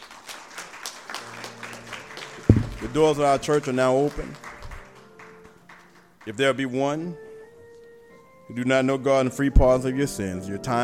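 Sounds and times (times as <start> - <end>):
church congregation clapping hands in praise: 0.0 - 6.6
speech: 2.8 - 4.4, 6.3 - 7.2, 8.5 - 10.8.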